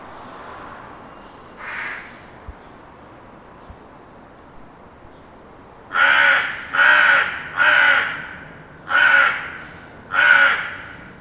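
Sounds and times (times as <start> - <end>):
Corvus corone carrion crow giving harsh hoarse caws: 1.6 - 2.2, 5.9 - 11.2.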